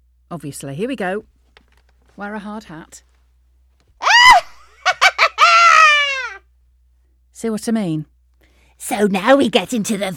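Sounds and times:
speech: 0.3 - 1.4, 2.2 - 3.1, 7.4 - 8.1, 8.8 - 10.1
voice doing a Halloween witch's cackle: 4.0 - 6.4.

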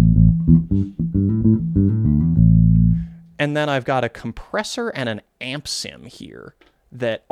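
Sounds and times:
bass guitar played on both pickups: 0.0 - 3.4
speech: 3.4 - 7.3.

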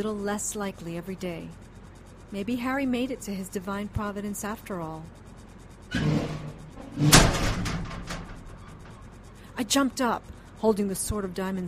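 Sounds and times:
speech: 0.0 - 1.7, 2.3 - 5.2, 7.0 - 7.6, 9.6 - 11.6
inner office door slamming open: 5.9 - 9.0.

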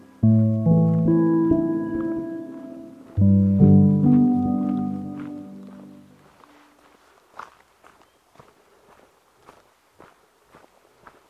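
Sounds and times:
long deep horn-like chords on a mountain trail: 0.0 - 6.3
soft footsteps crunching on a mountain trail: 0.7 - 11.2.

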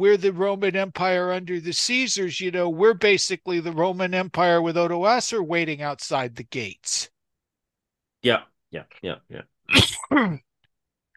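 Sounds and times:
speech: 0.0 - 7.1, 8.2 - 10.5
person coughing: 9.7 - 10.5
throat clearing: 9.7 - 10.5.

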